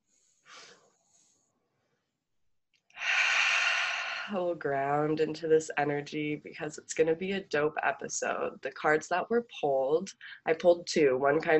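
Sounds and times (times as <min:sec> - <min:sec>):
group taking deep breaths: 0:00.0 - 0:01.5, 0:03.0 - 0:04.4
speech: 0:04.3 - 0:11.5.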